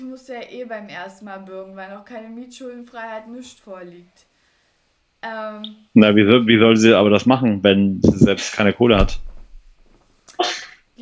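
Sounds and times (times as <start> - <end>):
speech: 0.2 - 4.3, 5.2 - 9.3, 10.4 - 11.0
loud sneeze: 10.3 - 10.8.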